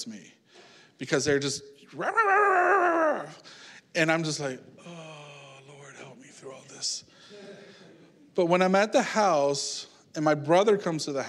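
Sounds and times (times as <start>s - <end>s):
speech: 0.0s - 0.4s, 1.0s - 5.0s, 6.4s - 7.4s, 8.4s - 11.2s
person imitating a barking dog with a whining cry: 2.0s - 3.4s.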